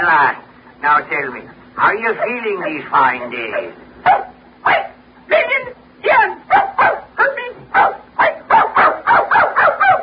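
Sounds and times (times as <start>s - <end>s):
speech: 0.0s - 4.9s
dog barking: 2.1s - 5.0s, 6.5s - 10.0s.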